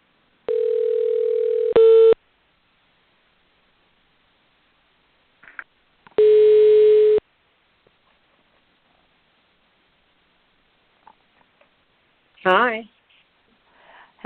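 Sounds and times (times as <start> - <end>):
telephone line ringing tone through the earpiece: 0.5 - 2.2, 6.2 - 7.2
speech: 12.4 - 13.0.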